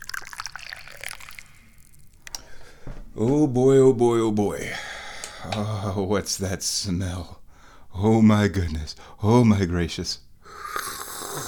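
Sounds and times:
Gingin Mei tea pouring into a cup: 0.0s - 2.2s
speech: 2.8s - 7.4s, 8.0s - 10.2s.

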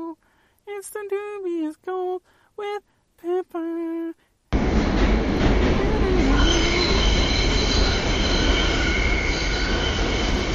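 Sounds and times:
speech: 0.8s - 2.9s
moving subway car rumbling: 4.5s - 10.5s
high metallic subway wheel squeals: 6.2s - 10.5s.

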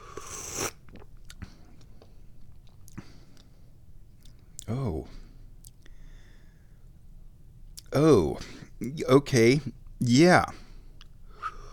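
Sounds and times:
person slurping hot tea: 0.0s - 1.1s
speech: 8.0s - 10.6s.

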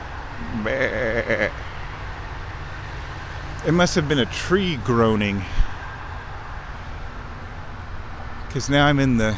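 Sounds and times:
goat bleating: 0.4s - 1.6s
speech: 0.6s - 1.7s, 3.6s - 5.7s, 8.5s - 9.3s.

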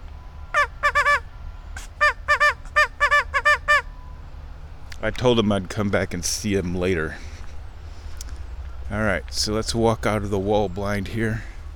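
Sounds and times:
faint noise: 0.0s - 11.7s
nasal duck quacks blown on a duck call at ducks: 0.5s - 1.2s, 1.9s - 3.9s
speech: 5.0s - 7.3s, 8.9s - 11.5s.

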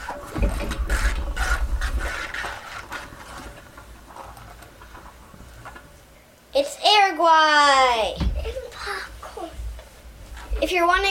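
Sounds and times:
desk globe spun upside down with rasping whir: 0.0s - 3.8s
speech: 7.2s - 8.2s, 10.7s - 11.0s.

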